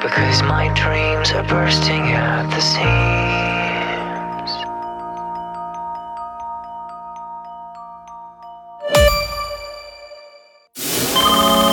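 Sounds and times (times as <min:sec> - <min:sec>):
speech: 0:00.1 - 0:03.5
phone ringtone chiming electronic melody: 0:03.5 - 0:11.7.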